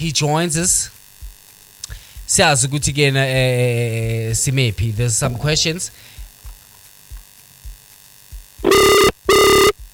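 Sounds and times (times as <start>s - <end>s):
speech: 0.0s - 1.0s, 2.3s - 6.2s
faint low hum: 0.0s - 9.9s
soft rhythmic thumps: 1.0s - 2.4s, 5.0s - 9.9s
telephone ringback tone on an outgoing call: 8.6s - 9.8s.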